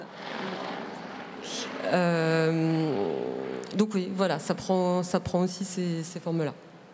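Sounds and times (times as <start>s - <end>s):
helicopter passing overhead in Nantes France: 0.0s - 5.4s
speech: 1.8s - 2.8s, 3.8s - 6.7s.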